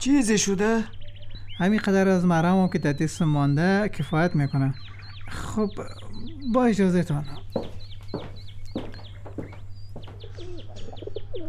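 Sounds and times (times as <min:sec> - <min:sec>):
speech: 0:00.0 - 0:01.0, 0:01.6 - 0:08.4
bright chirps: 0:00.0 - 0:11.4
pigeons cooing and burbling: 0:05.9 - 0:06.6, 0:10.0 - 0:11.4.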